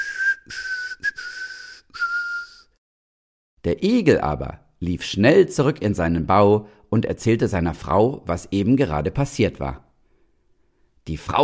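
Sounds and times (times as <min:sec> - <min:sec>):
person whistling a short cheerful tune: 0:00.0 - 0:02.8
speech: 0:03.6 - 0:09.9, 0:11.1 - 0:11.4.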